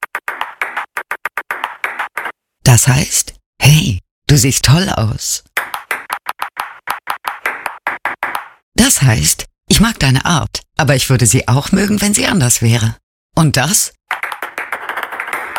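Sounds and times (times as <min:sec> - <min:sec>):
table tennis ball tapping out Morse code: 0:00.0 - 0:02.3, 0:05.6 - 0:08.6, 0:14.1 - 0:15.5
speech: 0:02.8 - 0:05.6, 0:08.9 - 0:14.2.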